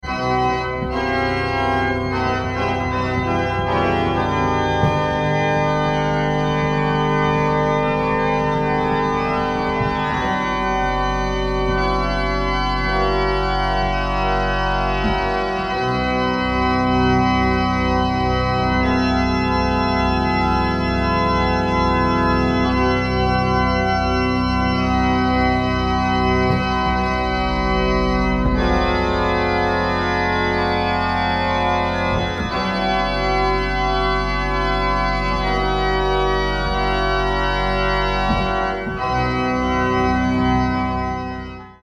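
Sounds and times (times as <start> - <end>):
organ improvisation: 0.0 - 41.8.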